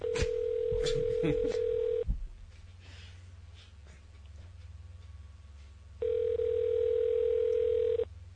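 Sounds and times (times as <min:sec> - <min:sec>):
telephone ringing with electronic tone: 0:00.0 - 0:02.0, 0:06.0 - 0:08.1
soft breathy noises: 0:02.6 - 0:04.1.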